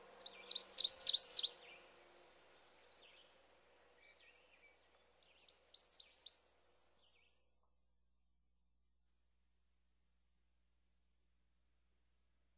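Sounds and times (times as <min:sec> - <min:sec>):
male American Redstart singing: 0:00.1 - 0:01.5, 0:05.3 - 0:06.4.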